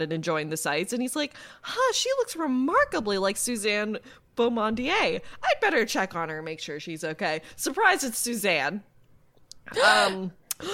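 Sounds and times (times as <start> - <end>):
speech: 0.0 - 8.9, 9.7 - 10.7
person gasping in a theatrical mock French manner: 9.7 - 10.7.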